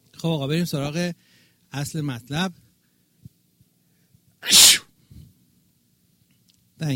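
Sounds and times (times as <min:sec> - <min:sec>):
speech: 0:00.2 - 0:02.6
sharp sneeze: 0:04.4 - 0:04.9.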